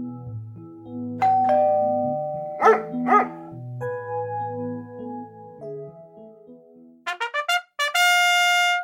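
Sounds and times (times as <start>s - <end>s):
light musical backing with bright tones: 0.0s - 8.8s
chiming doorbell: 1.2s - 4.6s
dog barking: 2.6s - 3.5s.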